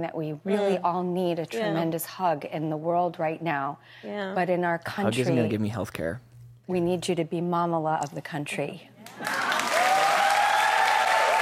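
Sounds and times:
speech: 0:00.0 - 0:09.4
crowd applauding: 0:09.1 - 0:11.4.

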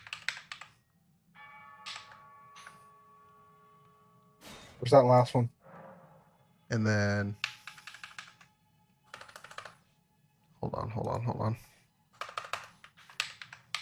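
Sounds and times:
loud typing on a heavy clunky computer keyboard: 0:00.0 - 0:00.7, 0:07.4 - 0:08.5, 0:09.1 - 0:09.8, 0:12.2 - 0:13.8
speech: 0:04.8 - 0:05.6, 0:06.7 - 0:07.4, 0:10.7 - 0:11.7.

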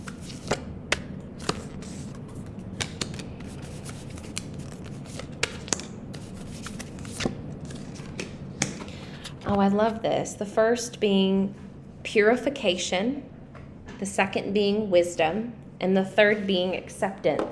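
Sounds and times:
oracle cards being shuffled: 0:00.0 - 0:09.9
speech: 0:09.5 - 0:13.3, 0:14.0 - 0:17.5.

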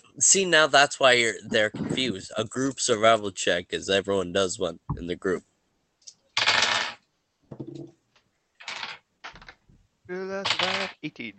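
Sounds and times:
speech: 0:00.2 - 0:05.5, 0:10.1 - 0:11.3
dice clattering across a hard tabletop: 0:06.4 - 0:07.9, 0:08.6 - 0:09.6, 0:10.4 - 0:10.9.

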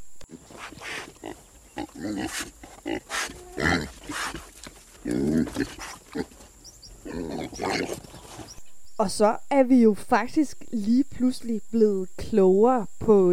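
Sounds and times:
warthog grunting, snorting and squealing: 0:00.3 - 0:06.4, 0:07.0 - 0:08.3
speech: 0:02.0 - 0:04.4, 0:05.1 - 0:06.4, 0:07.5 - 0:08.1, 0:09.0 - 0:13.3.

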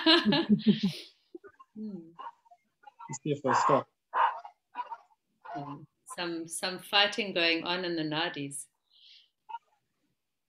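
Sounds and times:
speech: 0:00.0 - 0:01.1, 0:01.8 - 0:02.3, 0:03.1 - 0:04.2, 0:05.6 - 0:08.7
dogs barking: 0:02.2 - 0:05.8.

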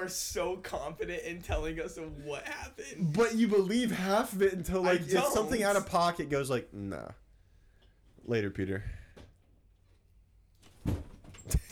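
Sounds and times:
speech: 0:00.0 - 0:07.2, 0:08.2 - 0:09.0
door opening and closing: 0:10.6 - 0:11.6.

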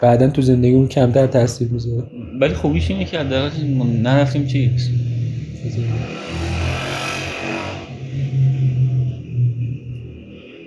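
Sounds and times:
speech: 0:00.0 - 0:06.4
motorcycle passing by outside: 0:05.0 - 0:09.2.

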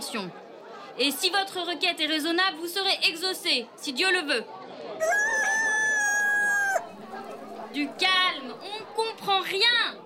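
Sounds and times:
speech: 0:00.1 - 0:00.4, 0:01.0 - 0:05.2, 0:07.7 - 0:10.0
rooster crowing: 0:05.0 - 0:06.9.

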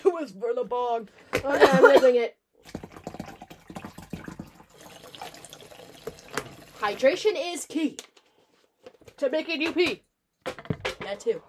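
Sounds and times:
speech: 0:00.2 - 0:02.9, 0:06.8 - 0:08.1, 0:09.2 - 0:11.4
woman filling a water bottle from a tap: 0:02.6 - 0:07.2.

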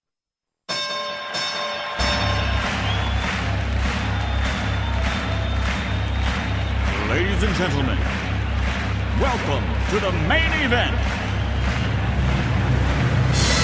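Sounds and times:
bell ringing: 0:00.7 - 0:03.1
loud steady crowd roar: 0:01.8 - 0:13.6
speech: 0:07.4 - 0:08.2, 0:09.2 - 0:11.2.

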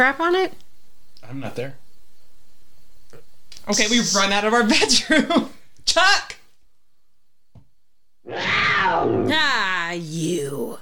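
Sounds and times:
speech: 0:00.0 - 0:00.6, 0:01.3 - 0:01.8, 0:03.7 - 0:06.4, 0:08.3 - 0:10.8
cat meowing in a harsh drawn-out yowl: 0:08.3 - 0:09.4.

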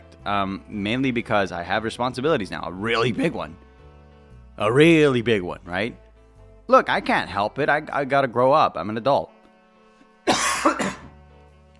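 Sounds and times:
speech: 0:00.2 - 0:03.6, 0:04.6 - 0:06.0, 0:06.7 - 0:09.3
person coughing from smoke: 0:10.2 - 0:11.2.

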